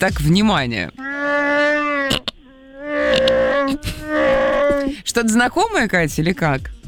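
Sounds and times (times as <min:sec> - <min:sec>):
speech: 0:00.0 - 0:01.0, 0:03.7 - 0:04.3, 0:04.9 - 0:06.8
Wookiee growling vocalization with drawn-out moaning howls: 0:01.0 - 0:05.4.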